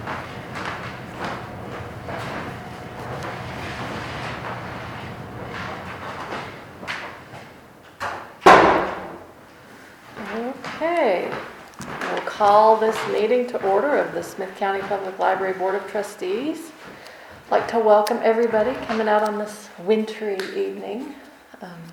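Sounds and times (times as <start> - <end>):
faint shuffling: 0.0 - 7.9, 9.4 - 21.4
door swinging shut with a solid thud: 0.0 - 9.3
room noise: 0.0 - 21.9
speech: 12.4 - 16.7, 17.5 - 21.9.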